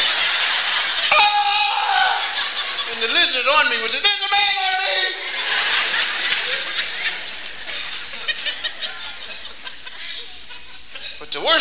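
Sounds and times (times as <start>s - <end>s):
laughter: 0.0s - 11.3s
person letting out a performed scream: 1.1s - 2.4s
speech: 3.4s - 5.2s, 11.3s - 11.5s.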